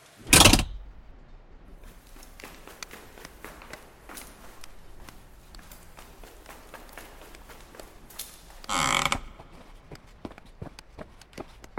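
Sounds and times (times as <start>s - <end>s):
door lock breaking: 0.2s - 0.9s
rattling: 0.2s - 1.0s
footsteps: 0.3s - 11.7s.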